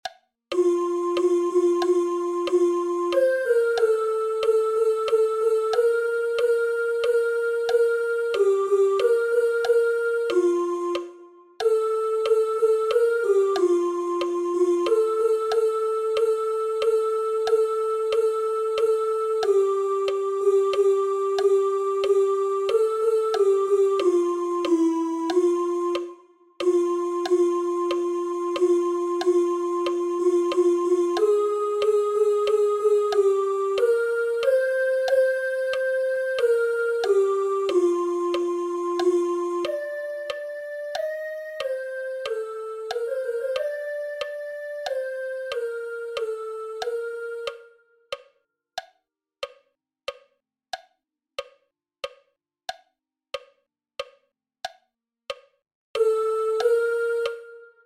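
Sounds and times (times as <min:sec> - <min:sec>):
alto voices singing: 0:00.5 - 0:47.7, 0:56.0 - 0:57.8.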